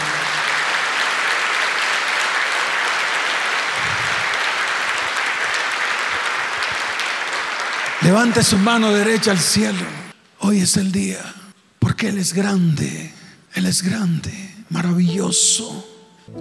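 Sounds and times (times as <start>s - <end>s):
large audience clapping loudly: 0.0s - 10.2s
speech: 8.1s - 11.4s, 12.0s - 16.3s.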